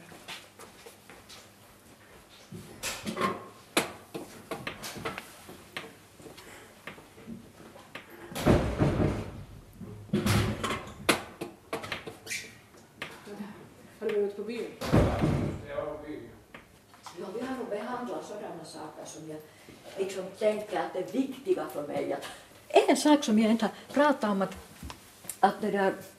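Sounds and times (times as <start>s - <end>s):
front door closing with a solid thud: 8.3s - 9.5s, 10.1s - 11.0s, 14.8s - 15.8s
speech: 14.2s - 16.3s, 17.2s - 24.6s, 25.4s - 26.1s.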